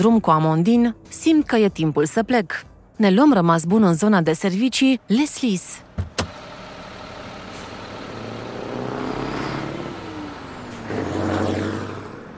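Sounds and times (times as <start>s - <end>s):
speech: 0.0s - 6.1s
heavy truck engines rumbling and idling at a busy stop: 5.1s - 12.3s
truck air brakes hissing: 7.4s - 7.9s.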